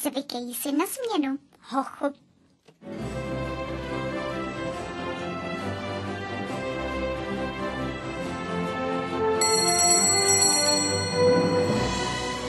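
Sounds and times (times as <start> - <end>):
speech: 0.0 - 3.0
music: 2.8 - 12.4
bell ringing: 9.4 - 12.4.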